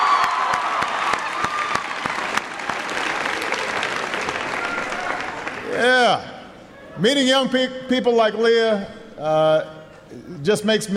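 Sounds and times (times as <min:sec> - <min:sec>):
room full of people applauding: 0:00.0 - 0:05.8
scattered sharp hand claps: 0:00.2 - 0:05.7
speech: 0:07.0 - 0:10.9.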